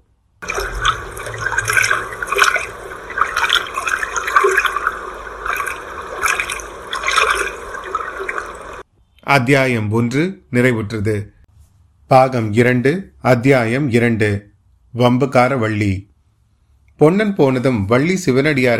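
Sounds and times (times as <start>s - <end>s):
water lapping and splashing as a boat moves through rippling water: 0.4s - 8.8s
speech: 9.3s - 11.4s, 12.1s - 16.1s, 17.0s - 18.7s.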